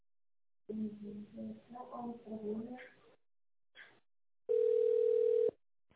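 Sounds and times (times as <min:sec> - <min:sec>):
telephone ringback tone while call connects: 0:04.5 - 0:05.6.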